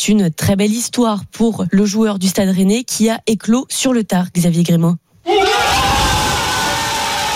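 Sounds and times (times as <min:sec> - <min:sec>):
speech: 0:00.0 - 0:05.8
group of men shouting and cheering in celebration: 0:05.3 - 0:07.3.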